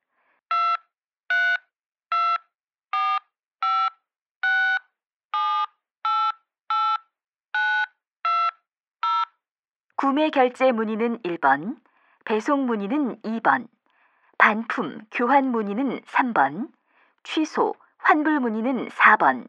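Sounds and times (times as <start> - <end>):
short clear mobile phone keypad beeps: 0.5 - 2.4, 3.0 - 4.8, 5.4 - 7.0, 7.6 - 9.3
speech: 10.0 - 13.8, 14.4 - 19.4.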